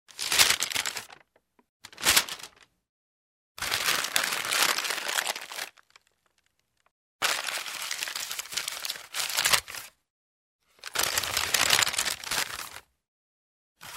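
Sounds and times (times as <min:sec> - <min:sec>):
paper bag rustling: 0:00.1 - 0:02.7, 0:03.6 - 0:06.1, 0:07.2 - 0:09.9, 0:10.9 - 0:12.7.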